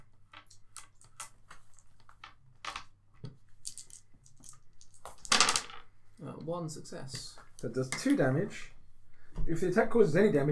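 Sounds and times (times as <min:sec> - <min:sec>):
handful of dice rattling across a hard surface: 0:00.0 - 0:05.9
speech: 0:06.4 - 0:08.8, 0:09.5 - 0:10.5.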